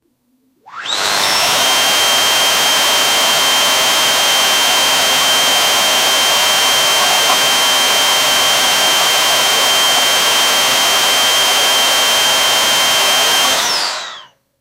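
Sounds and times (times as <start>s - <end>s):
vacuum cleaner: 0.7s - 14.3s.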